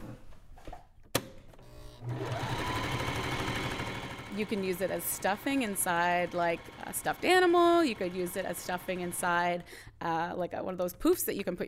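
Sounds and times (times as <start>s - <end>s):
sewing machine motor whirring while stitching fabric scraps: 1.6s - 9.7s
speech: 4.4s - 11.6s.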